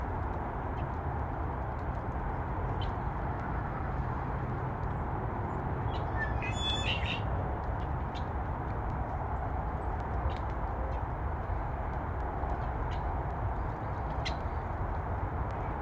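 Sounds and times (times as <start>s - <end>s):
freeway traffic: 0.0s - 15.7s
birds chirping: 5.9s - 7.2s.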